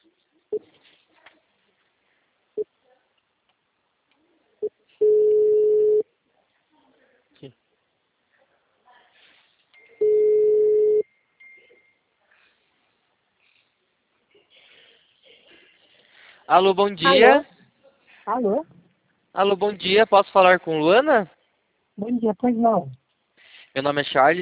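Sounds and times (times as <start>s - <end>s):
telephone line tone while a call is being placed: 5.0s - 6.0s, 10.0s - 11.0s
speech: 16.5s - 17.5s, 18.3s - 18.7s, 19.4s - 21.4s, 22.0s - 23.0s, 23.7s - 24.4s.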